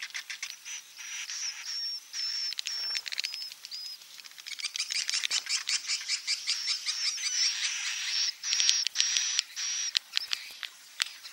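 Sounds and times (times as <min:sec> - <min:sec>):
swiftlet roosting call lure recording: 0:00.1 - 0:10.5.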